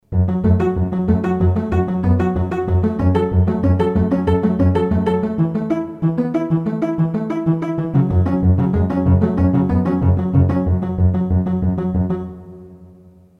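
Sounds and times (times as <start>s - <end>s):
Roland MT-32 synthesized strings: 0.0s - 13.1s.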